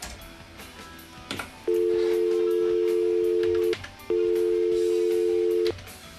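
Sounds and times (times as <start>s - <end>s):
telephone line tone after caller hung up: 1.7s - 5.8s.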